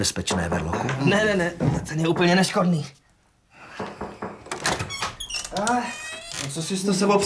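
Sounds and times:
speech: 0:00.0 - 0:03.0, 0:05.6 - 0:07.2
door hinge creaking and squeaking: 0:03.7 - 0:07.2
door latch knocking and rattling: 0:04.2 - 0:06.6.

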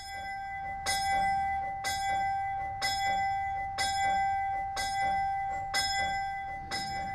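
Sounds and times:
chapel bell tolling automatically: 0:00.0 - 0:07.1.

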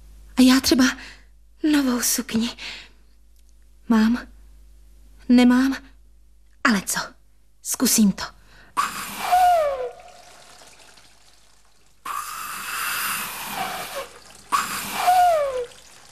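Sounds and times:
speech: 0:00.4 - 0:02.9, 0:03.9 - 0:04.3, 0:05.3 - 0:05.9, 0:06.6 - 0:09.1
whistle blown sputtering out gurgling water: 0:08.8 - 0:16.1.

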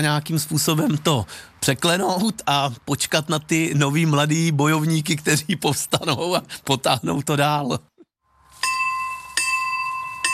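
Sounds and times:
speech: 0:00.0 - 0:07.9
bell ringing in an old village belfry: 0:08.6 - 0:10.3.

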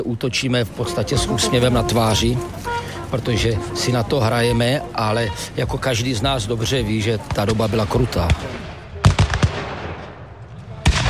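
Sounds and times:
speech: 0:00.0 - 0:08.7
low rumbling background: 0:00.1 - 0:07.4
gunfire at battle reenactment at Chlum near Hradec Králové Czech Republic: 0:07.4 - 0:11.0
cannon salvo at battle reenactment at Chlum near Hradec Králové Czech Republic: 0:08.3 - 0:11.0.

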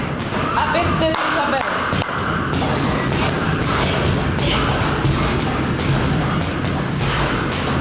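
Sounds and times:
boxing punches thudding against pads or a bag in a gym: 0:00.0 - 0:07.7
female boxing coach calling out instructions: 0:00.6 - 0:01.7.

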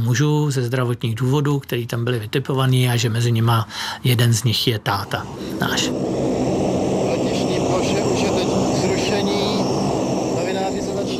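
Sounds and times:
speech: 0:00.0 - 0:06.4
airplane engines roaring after landing: 0:04.8 - 0:11.1.

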